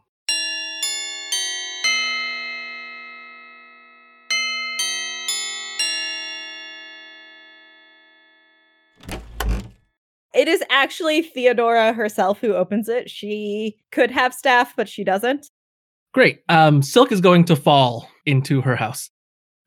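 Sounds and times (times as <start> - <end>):
melodic doorbell chime playing a four-note sequence: 0.3 - 8.9
speech: 10.4 - 19.1.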